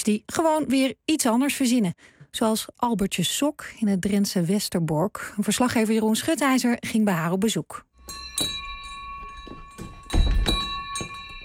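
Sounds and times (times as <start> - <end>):
speech: 0.0 - 8.6
door bell ringing at a small sewing workshop in Westerbork, Drenthe: 8.0 - 11.4
heavy low thump: 9.8 - 11.2.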